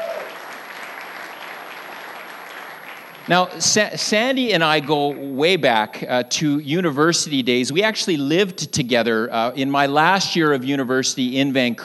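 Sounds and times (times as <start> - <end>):
room full of people applauding: 0.0 - 4.0
speech: 3.3 - 11.8.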